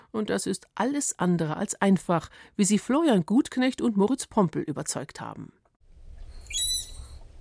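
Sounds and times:
speech: 0.1 - 5.6
manatee high-pitched whistle: 6.3 - 7.2.

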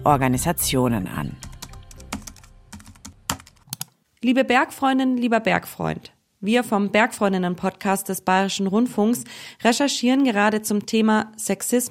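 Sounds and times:
speech: 0.0 - 1.5, 4.2 - 11.8
computer keyboard typing letters: 1.4 - 3.9.

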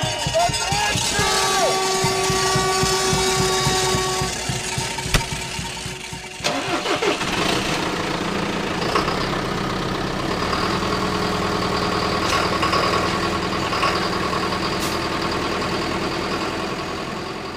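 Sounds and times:
tractor engine starting and idling: 0.1 - 17.5.

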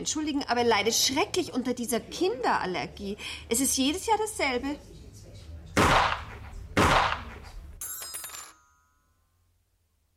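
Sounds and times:
speech: 0.0 - 5.0
loud sharp gunshots with booming tail: 5.8 - 7.5
brief metallic ringing tone: 7.8 - 9.6.

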